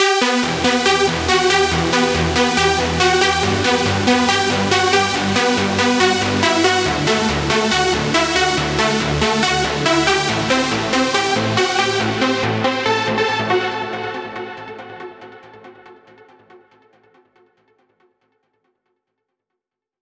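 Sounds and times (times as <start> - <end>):
synth lead outro melody in E minor: 0.0 - 15.5.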